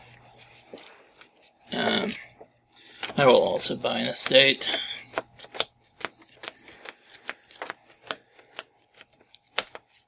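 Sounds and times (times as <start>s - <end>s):
deck of playing cards being shuffled in riffles during a card game: 0.3s - 10.0s
speech: 3.2s - 4.9s.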